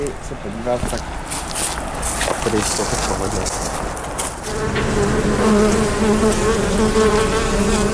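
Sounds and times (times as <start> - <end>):
speech: 0.0 - 1.5, 2.4 - 3.8, 4.6 - 7.9
honeybees buzzing near an apiary: 2.9 - 7.9.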